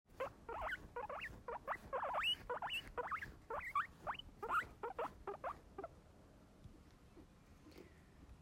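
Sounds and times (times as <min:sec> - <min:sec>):
brushing guinea pig fur: 0:00.2 - 0:05.4
guinea pig squeaking at nearly 3 kHz while being brushed: 0:00.2 - 0:05.9.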